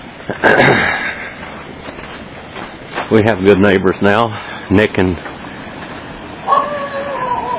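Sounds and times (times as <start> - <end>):
rushing noise: 0.0 - 7.5
speech: 0.3 - 0.9, 3.1 - 5.3
excited dog yelping: 6.4 - 7.5.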